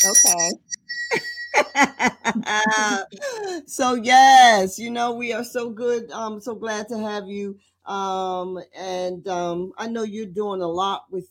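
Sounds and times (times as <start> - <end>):
bell ringing with bright metallic tone: 0.0 - 3.0
short rhythmic bursts of laughter: 1.1 - 3.2
speech: 2.5 - 11.2.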